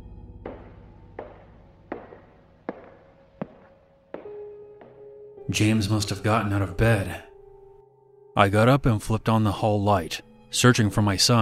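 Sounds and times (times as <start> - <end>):
footsteps going down a hallway on a hard floor: 0.4 - 5.2
speech: 5.5 - 7.3, 8.4 - 11.4.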